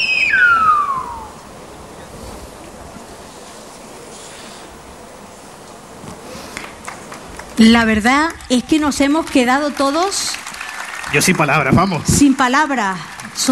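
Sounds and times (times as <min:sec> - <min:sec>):
loud piercing whistle in the Silbo Gomero whistled language: 0:00.0 - 0:01.4
steady outdoor hiss: 0:00.0 - 0:13.5
speech: 0:07.6 - 0:10.4, 0:11.1 - 0:13.5.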